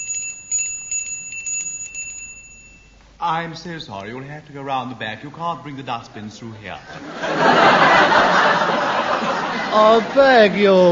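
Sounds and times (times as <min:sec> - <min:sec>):
bell ringing: 0:00.0 - 0:03.0
speech: 0:03.2 - 0:10.9
laughter: 0:06.1 - 0:10.9.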